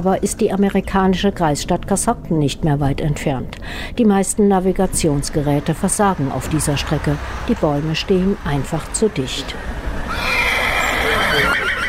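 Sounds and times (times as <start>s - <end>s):
speech: 0.0s - 10.2s
horses neighing in dense forest near Coshocton Ohio by the Ohio-Erie Canal: 9.5s - 11.8s.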